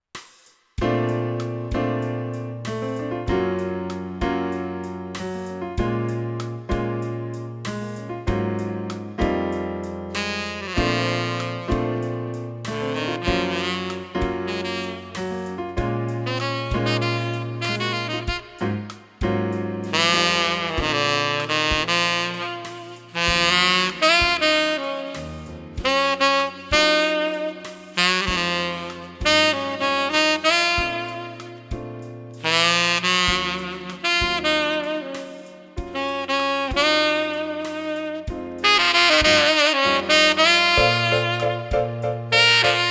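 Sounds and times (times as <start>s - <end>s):
piano: 0.8s - 42.8s
saxophone: 10.1s - 42.8s.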